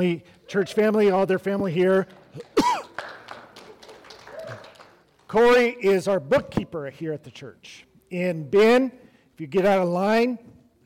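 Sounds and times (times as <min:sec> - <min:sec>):
speech: 0:00.0 - 0:02.5, 0:05.3 - 0:10.5
throat clearing: 0:02.4 - 0:03.0
person coughing in a church: 0:02.6 - 0:03.0.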